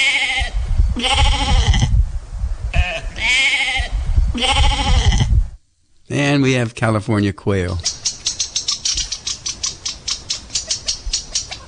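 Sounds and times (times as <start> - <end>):
baby lambs bleating: 0.0 - 2.0, 2.8 - 5.4
speech: 6.4 - 8.0.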